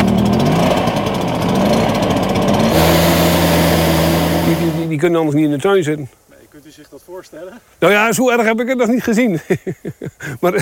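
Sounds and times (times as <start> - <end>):
leaf blower motor running: 0.0 - 5.0
speech: 5.0 - 10.6.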